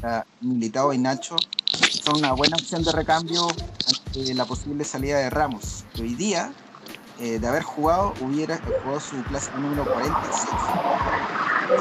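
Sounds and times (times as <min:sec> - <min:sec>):
speech: 0:00.0 - 0:06.6, 0:07.2 - 0:11.7
car passing on the street: 0:06.6 - 0:11.7.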